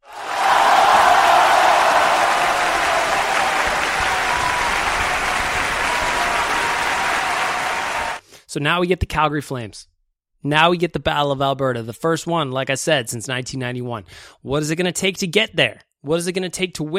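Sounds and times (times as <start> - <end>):
round of applause from many hands: 0.0 - 8.2
speech: 8.5 - 16.9.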